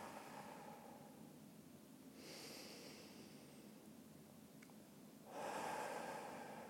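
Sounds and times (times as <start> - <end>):
deep breaths in through nose and out through mouth: 0.0 - 1.3, 2.2 - 3.8, 5.3 - 6.6.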